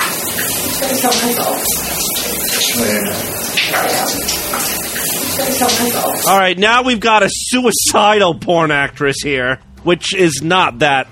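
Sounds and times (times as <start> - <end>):
shower running: 0.0 - 6.4
speech: 0.8 - 4.8, 5.4 - 11.1.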